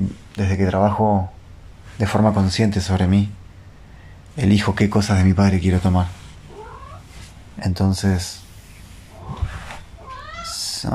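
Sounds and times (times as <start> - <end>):
speech: 0.1 - 1.4, 2.0 - 3.4, 4.4 - 6.2, 7.6 - 8.4
cat meowing after waking up: 6.5 - 7.1, 9.2 - 10.8.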